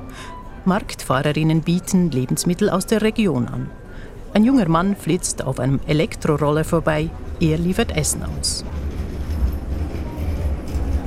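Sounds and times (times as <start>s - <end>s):
street noise: 0.0s - 11.0s
speech: 0.2s - 3.8s, 4.4s - 8.9s
tram rattling along city tracks: 4.8s - 11.0s.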